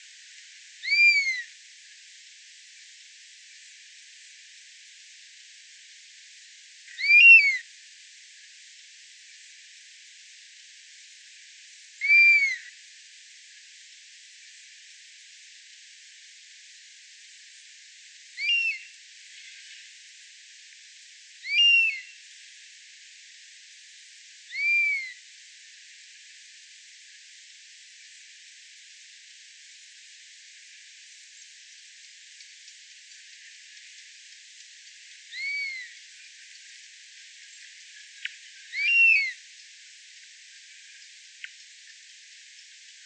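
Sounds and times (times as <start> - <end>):
buzzard bird songs: 0.8 - 1.4, 6.9 - 7.6, 12.0 - 12.7, 18.4 - 19.9, 21.4 - 22.2, 24.5 - 25.2, 32.4 - 36.8, 37.4 - 39.8.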